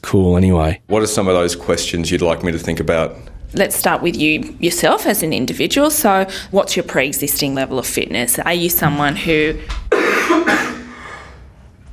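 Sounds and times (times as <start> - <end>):
speech: 0.1 - 10.7
person with a current cough coughing chesty coughs: 9.9 - 11.3.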